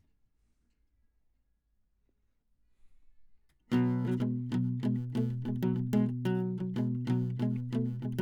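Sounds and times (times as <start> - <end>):
classical guitar playing: 3.7 - 8.2.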